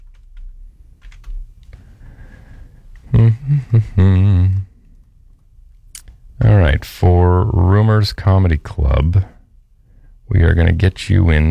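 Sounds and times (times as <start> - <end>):
typing on a computer keyboard: 0.0 - 1.7
low hum: 0.0 - 11.4
loud voiced vocalizing: 3.1 - 4.7
speech: 3.2 - 4.4, 7.8 - 9.4, 10.3 - 11.4.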